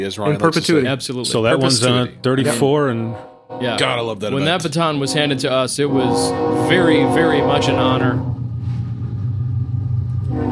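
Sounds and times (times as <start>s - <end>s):
speech: 0.0s - 8.3s
loud train rumbling past with rattling wheels: 4.4s - 10.4s
train horn or brake squeal: 5.1s - 8.3s.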